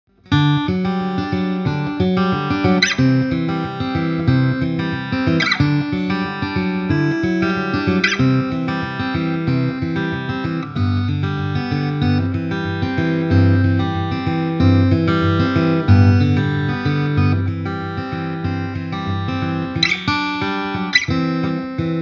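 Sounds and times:
Takamine Thinline guitar fingerpicking: 0:00.1 - 0:22.0.

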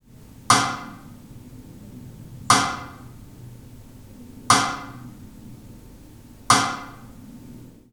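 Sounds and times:
drum sidestick recorded directly: 0:00.5 - 0:01.0, 0:02.5 - 0:03.1, 0:04.5 - 0:05.1, 0:06.5 - 0:07.1.

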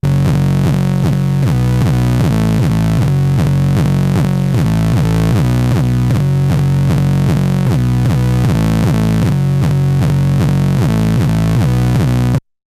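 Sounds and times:
MS-20 synthesizer cycle bass: 0:00.0 - 0:12.4.

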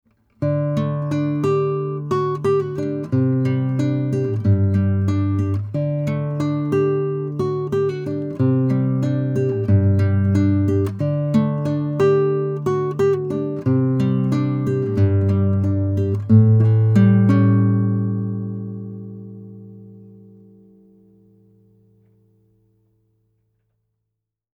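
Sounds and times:
classical guitar: 0:00.1 - 0:22.9.

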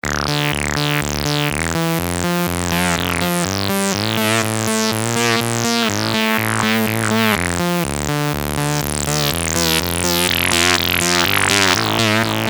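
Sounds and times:
Russian filter FM bass with delay: 0:00.0 - 0:12.4.

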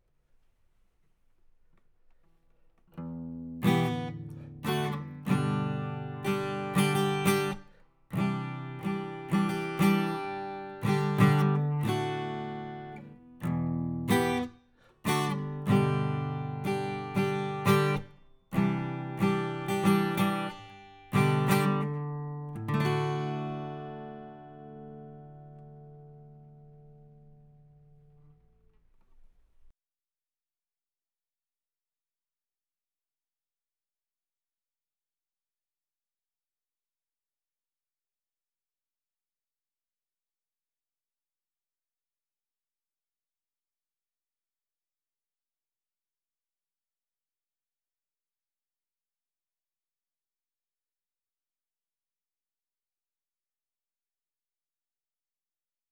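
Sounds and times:
basic guitar playing: 0:03.0 - 0:29.3.

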